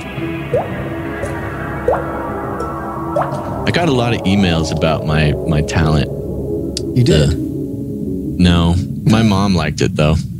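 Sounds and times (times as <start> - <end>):
drips of blood in a dungeon: 0.0 - 9.6
dark rumbling low drone: 0.0 - 10.3
speech: 3.8 - 6.2, 7.0 - 7.4, 8.4 - 10.3.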